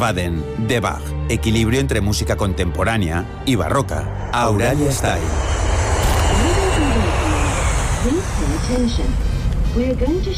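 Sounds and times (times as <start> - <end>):
speech: 0.0 - 5.7, 8.0 - 10.3
airplane engine in flight: 3.2 - 10.3.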